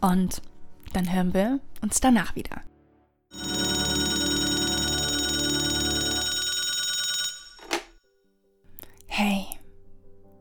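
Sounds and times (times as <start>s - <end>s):
speech: 0.0s - 2.7s, 9.2s - 9.5s
telephone ringing: 3.3s - 8.0s.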